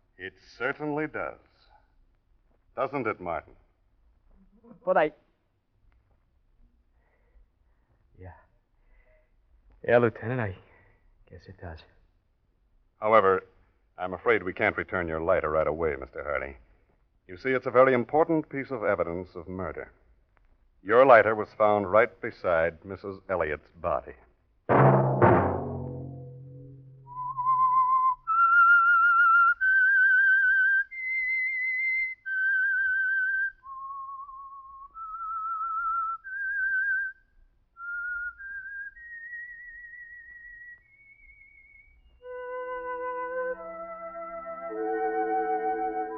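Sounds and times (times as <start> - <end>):
speech: 0.2 - 1.5, 2.8 - 3.6, 4.6 - 5.2, 8.2 - 8.4, 9.8 - 10.6, 11.3 - 11.9, 13.0 - 16.6, 17.3 - 20.0, 20.8 - 24.8
soft orchestral chords: 24.7 - 27.2
lone whistler whistling a slow eerie melody: 26.3 - 46.1.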